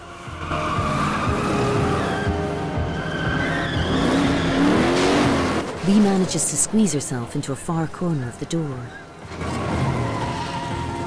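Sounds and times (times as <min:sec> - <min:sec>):
car tires squealing: 0:00.0 - 0:06.3, 0:08.8 - 0:11.0
car engine roaring while reversing at speed: 0:00.0 - 0:11.0
speech: 0:05.9 - 0:09.5.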